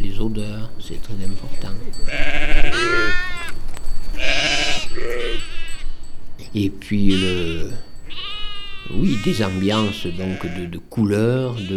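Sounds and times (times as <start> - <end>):
speech: 0.2 - 3.2, 6.6 - 8.3, 8.9 - 11.7
sheep bleating: 2.1 - 3.6, 4.2 - 6.0, 7.0 - 11.7.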